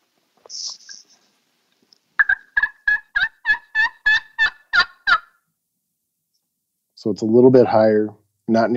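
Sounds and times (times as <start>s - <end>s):
slate turkey call struck with a striker, scratchy squeaks: 2.2s - 5.4s
speech: 7.0s - 8.7s.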